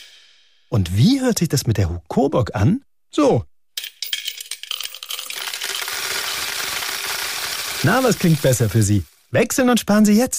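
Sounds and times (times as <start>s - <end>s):
speech: 0.7s - 3.5s, 7.8s - 10.3s
coins dropping into a piggy bank: 3.8s - 9.1s.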